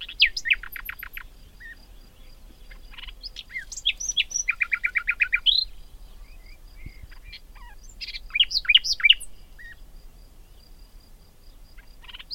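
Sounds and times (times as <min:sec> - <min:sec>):
common nightingale Luscinia megarhynchos singing: 0:00.0 - 0:10.8, 0:11.5 - 0:12.3.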